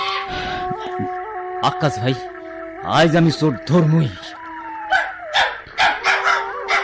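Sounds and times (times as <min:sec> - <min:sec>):
speech: 0:00.8 - 0:04.4
dog giving short yelping barks: 0:04.4 - 0:06.8.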